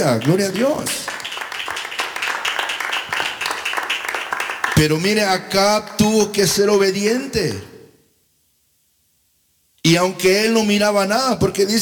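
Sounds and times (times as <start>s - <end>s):
speech: 0.0s - 1.2s, 4.8s - 7.7s, 9.8s - 11.8s
audience clapping hands: 0.0s - 5.3s.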